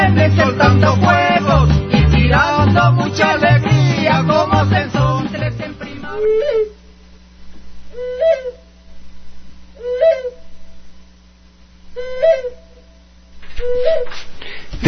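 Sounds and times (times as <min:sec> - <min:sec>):
steady low hum: 0:00.0 - 0:14.8
speech: 0:00.2 - 0:01.8
barn owl hooting: 0:06.0 - 0:06.8, 0:07.9 - 0:08.7, 0:09.8 - 0:10.6, 0:12.0 - 0:12.8, 0:13.5 - 0:14.2.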